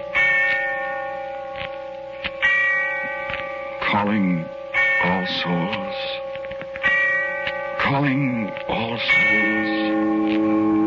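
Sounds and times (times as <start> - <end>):
church bell tolling: 0.0 - 10.8
speech: 4.0 - 6.3, 7.8 - 10.8.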